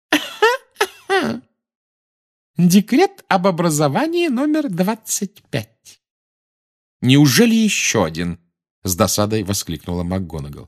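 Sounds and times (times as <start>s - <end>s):
reader voicing an imitation of throat clearing: 0.4s - 1.4s
speech: 2.6s - 6.0s, 7.0s - 10.6s.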